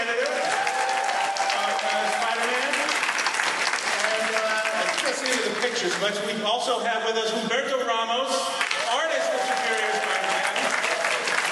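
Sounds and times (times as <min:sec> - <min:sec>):
audience applause: 0:00.0 - 0:06.2, 0:08.6 - 0:11.5
speech: 0:05.8 - 0:08.6.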